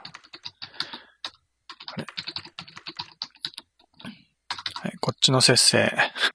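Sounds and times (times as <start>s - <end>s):
typing on a computer keyboard: 0.0s - 5.1s
speech: 5.2s - 6.3s.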